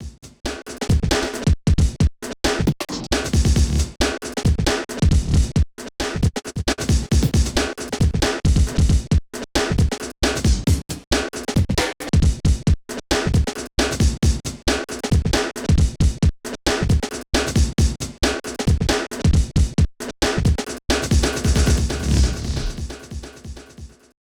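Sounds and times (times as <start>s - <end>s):
drum and bass music at 135: 0.0s - 24.2s.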